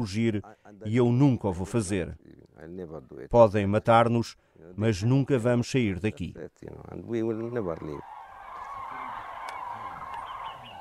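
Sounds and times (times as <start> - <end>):
speech: 0.0 - 8.2
faint scattered bird calls: 7.3 - 10.8
loud honking bird call: 7.7 - 10.8.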